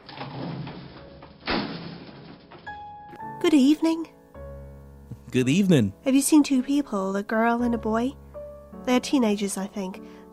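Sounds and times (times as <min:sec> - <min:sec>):
elevator doors sliding open with mechanical rumble and hiss: 0:00.0 - 0:01.5
speech: 0:03.4 - 0:04.2, 0:05.3 - 0:08.2, 0:08.8 - 0:10.2.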